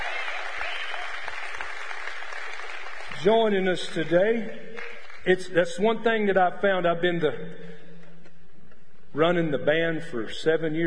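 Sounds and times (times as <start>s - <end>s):
audience applause for a new singer joining a band: 0.0s - 4.0s
speech: 3.2s - 7.7s, 9.1s - 10.8s.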